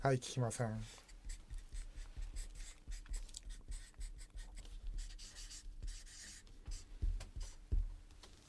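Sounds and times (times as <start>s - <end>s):
speech: 0.0s - 1.1s
pen writing on a shikishi autograph board: 0.9s - 7.6s.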